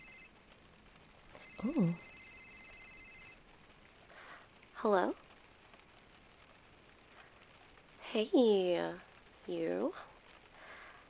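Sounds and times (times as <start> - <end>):
phone giving a short high warbling electronic ring: 0.0 - 0.3, 1.4 - 3.4
speech: 1.6 - 2.1, 4.8 - 5.2, 8.1 - 10.1.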